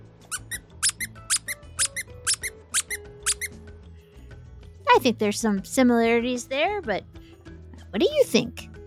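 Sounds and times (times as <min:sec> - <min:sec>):
squeaky dog toy squeaking: 0:00.2 - 0:03.6
speech: 0:05.0 - 0:07.1, 0:07.9 - 0:08.6.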